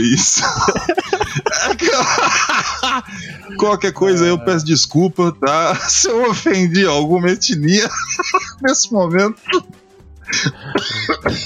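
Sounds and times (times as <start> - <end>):
speech: 0.0 - 1.0, 1.9 - 9.6, 10.3 - 11.4
laughter: 0.0 - 9.7, 10.3 - 11.4
person coughing and clearing throat after choking: 0.2 - 3.6, 8.2 - 8.6, 9.5 - 11.4.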